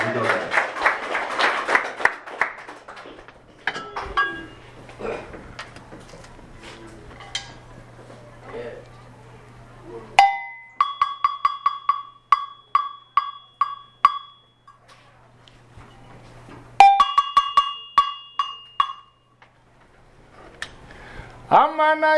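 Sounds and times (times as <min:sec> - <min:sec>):
audience clapping and cheering at a live percussion performance: 0:00.0 - 0:04.2
low steady hum: 0:03.3 - 0:22.1
tonal clangs: 0:03.6 - 0:04.7, 0:10.2 - 0:14.9, 0:16.8 - 0:19.3
sparse percussive hits: 0:10.2 - 0:14.5, 0:16.8 - 0:19.2.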